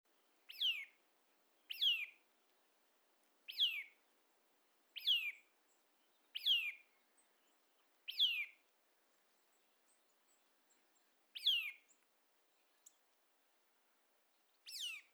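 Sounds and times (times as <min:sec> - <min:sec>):
Eurasian nuthatch Sitta europaea calls: 0:00.5 - 0:00.9, 0:01.7 - 0:02.1, 0:03.5 - 0:03.9, 0:05.0 - 0:05.4, 0:06.4 - 0:06.8, 0:08.1 - 0:08.5, 0:11.4 - 0:11.8, 0:14.7 - 0:15.1.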